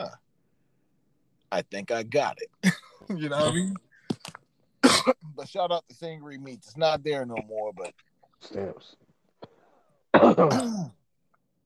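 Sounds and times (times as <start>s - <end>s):
speech: 1.5s - 3.9s, 5.0s - 9.5s, 10.2s - 11.0s
dry cough: 2.6s - 3.8s, 4.8s - 5.4s, 10.1s - 11.0s.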